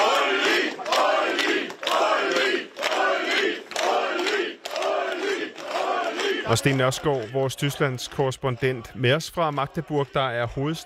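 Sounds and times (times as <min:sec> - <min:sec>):
crowd applauding at polling station: 0:00.0 - 0:10.8
speech: 0:06.5 - 0:10.8.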